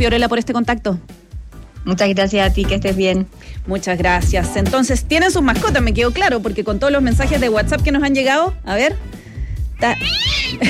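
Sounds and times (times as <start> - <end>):
speech: 0.0 - 1.2, 1.8 - 9.2, 9.8 - 10.6
cat meowing sound effect: 9.8 - 10.6.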